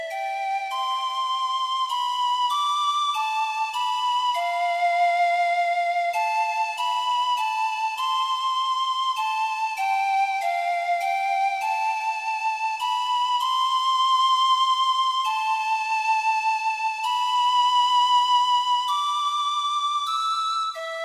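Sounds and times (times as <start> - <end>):
solo flute playing a slow gentle melody: 0.0 - 21.0.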